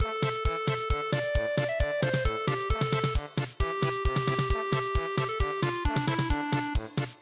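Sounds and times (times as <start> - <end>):
traditional polka in MIDI: 0.0 - 7.2.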